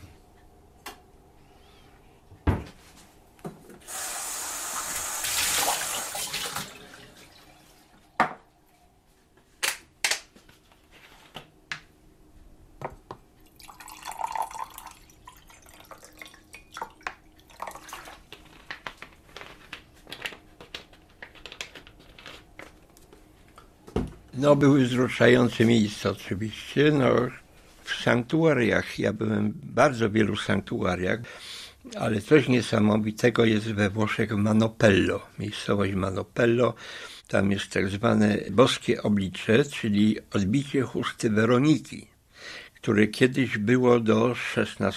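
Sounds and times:
drinking water being poured: 3.9 - 8.0, 13.4 - 18.5
speech: 24.4 - 27.4, 28.0 - 44.9.

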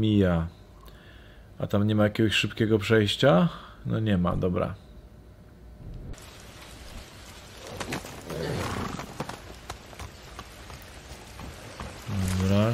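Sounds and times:
speech: 0.0 - 0.6, 1.6 - 4.8, 12.5 - 12.7
horse hooves clopping: 6.2 - 12.7.

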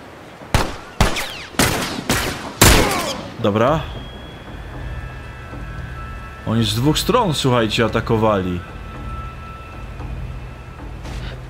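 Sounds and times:
gunfire in a video game: 0.6 - 3.4
speech: 3.4 - 4.0, 6.4 - 8.7.

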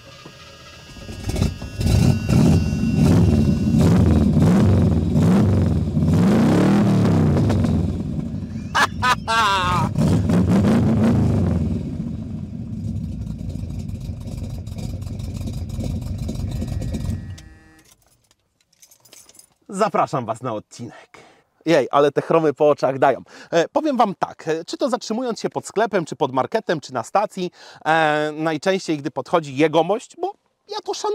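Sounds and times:
old carbureted car engine cranking, revving and idling: 1.2 - 8.7, 9.6 - 17.6
laughter: 8.5 - 10.0
speech: 19.8 - 31.1.

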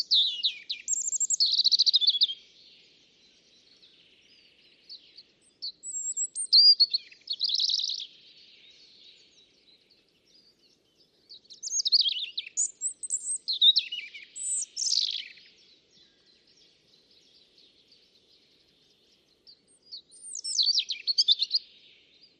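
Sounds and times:
European robin singing in a small alder wood in spring: 0.0 - 22.3.

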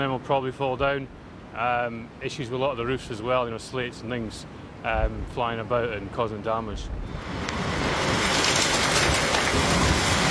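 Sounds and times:
speech: 0.0 - 7.6
heavy rain pouring during a storm: 7.1 - 10.2.

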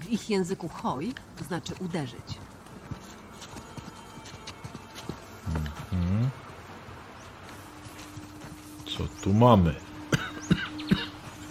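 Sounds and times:
speech: 0.1 - 2.4, 9.0 - 9.9
person coughing: 10.1 - 11.2.

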